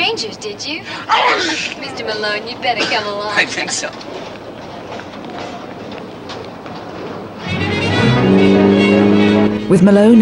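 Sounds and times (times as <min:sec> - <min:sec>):
speech: 0:00.1 - 0:04.4, 0:09.7 - 0:10.2
open-top sports car engine roaring at high speed: 0:07.2 - 0:10.2.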